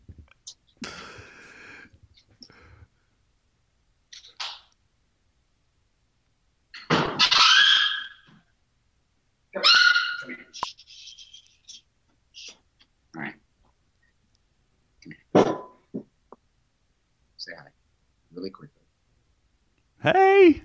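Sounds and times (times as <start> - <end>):
distressed dog with its foot stuck yelping and squealing: 7.2 - 8.3, 9.6 - 10.6
speech: 20.0 - 20.6.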